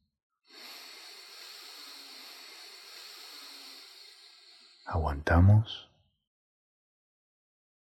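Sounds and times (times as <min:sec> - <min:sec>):
deep breath in through the nose: 0:00.4 - 0:04.9
speech: 0:04.9 - 0:05.9.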